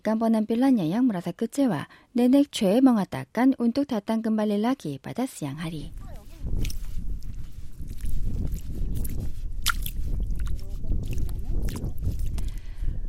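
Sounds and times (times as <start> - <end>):
speech: 0.0 - 6.8
bare feet squelching through soft tidal mud: 6.2 - 12.6.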